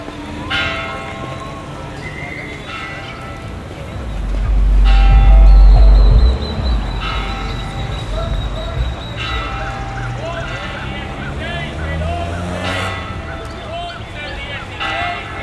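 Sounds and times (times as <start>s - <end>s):
outdoor street ambience: 0.0s - 15.4s
three cathedral bells ringing: 0.0s - 15.4s
deep rumble: 3.7s - 11.5s.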